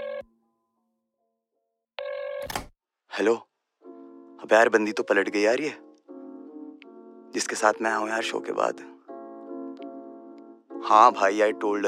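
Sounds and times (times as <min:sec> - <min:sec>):
phone ringing tone through the earpiece of an outgoing call: 0:00.0 - 0:00.3, 0:02.0 - 0:02.6
speech: 0:03.2 - 0:03.5, 0:04.4 - 0:05.8, 0:07.3 - 0:09.0, 0:10.8 - 0:11.8.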